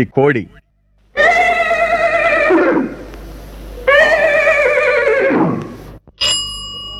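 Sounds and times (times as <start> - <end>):
horse neighing: 1.2 - 6.0.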